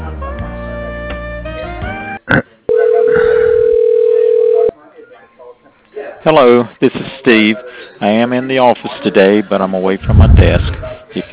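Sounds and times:
steady electronic telephone tone while a call is transferred to voicemail: 2.7s - 4.7s
speech: 6.2s - 11.3s.

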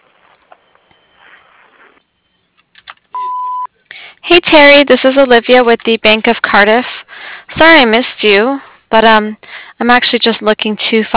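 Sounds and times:
answering machine beep on a business voicemail: 0.0s - 3.7s
speech: 4.5s - 7.0s, 7.6s - 11.1s.

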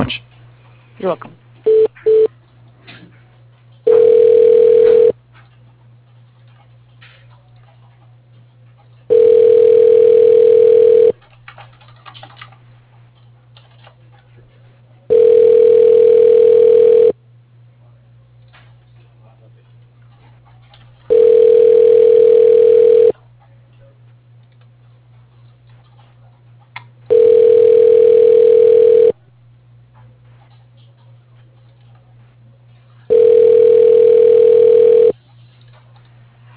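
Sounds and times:
faint low hum: 0.0s - 36.5s
speech: 1.0s - 1.4s
telephone line tone as a call is transferred to voicemail: 1.7s - 2.3s, 3.9s - 5.2s, 9.1s - 11.2s, 15.1s - 17.2s, 21.1s - 23.1s, 27.1s - 29.2s, 33.1s - 35.1s.

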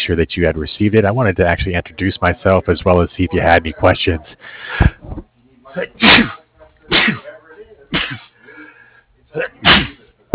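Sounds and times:
speech: 0.1s - 7.2s
person sneezing: 6.0s - 7.3s, 7.9s - 8.4s, 9.4s - 10.0s.

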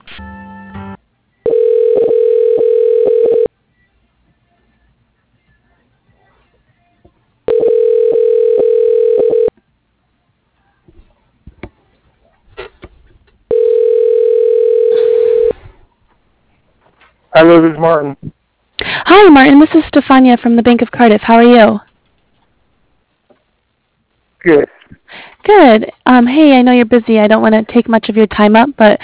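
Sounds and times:
telephone ringback tone during call transfer: 1.4s - 3.5s, 7.5s - 9.5s, 13.5s - 15.6s
speech: 17.4s - 18.3s, 19.2s - 21.9s, 24.4s - 24.7s, 25.5s - 29.0s.

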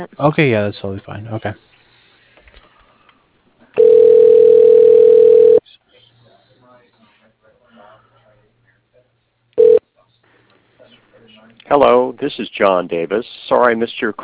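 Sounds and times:
speech: 0.0s - 1.7s, 11.7s - 14.2s
steady mid-pitched telephone tone during voicemail transfer: 3.8s - 5.6s, 9.6s - 9.8s.

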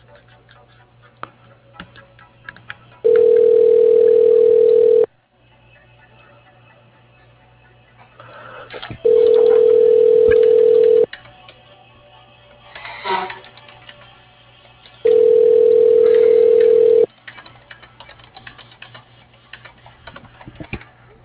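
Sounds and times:
telephone line tones during a call transfer: 3.0s - 5.1s, 9.0s - 11.1s, 15.1s - 17.1s.

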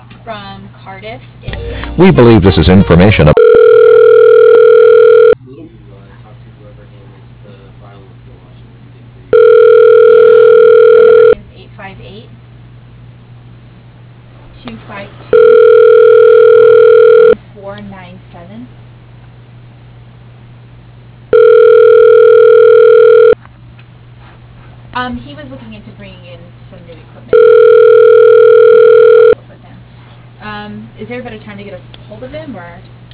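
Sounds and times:
speech: 0.2s - 3.4s
telephone ringback tones as a call is transferred to voicemail: 2.7s - 5.4s, 9.3s - 11.4s, 15.3s - 17.4s, 21.3s - 23.4s, 27.3s - 29.4s.

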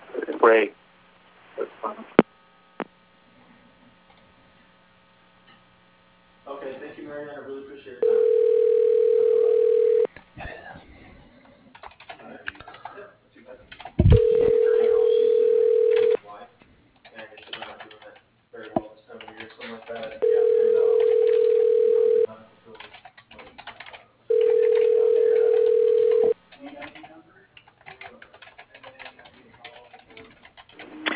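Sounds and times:
speech: 0.4s - 0.8s
phone line ringing over a telephone connection during call transfer: 8.0s - 10.1s, 14.1s - 16.2s, 20.2s - 22.3s, 24.3s - 26.4s
faint clatter: 8.0s - 31.1s.

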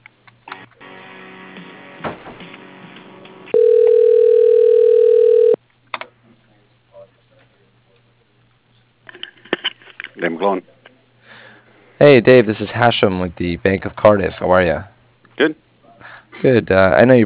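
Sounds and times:
telephone ring tone while a call is transferred: 3.5s - 5.6s
speech: 10.4s - 10.8s, 12.0s - 15.6s, 16.4s - 17.2s.

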